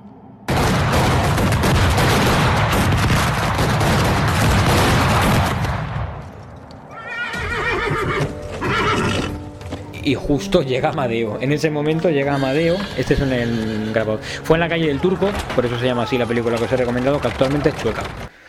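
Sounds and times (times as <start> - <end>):
dense volley of gunfire in a dramatized street assassination: 0.5 - 6.2
horses whinnying: 6.9 - 9.4, 12.2 - 18.1
speech: 10.1 - 18.3.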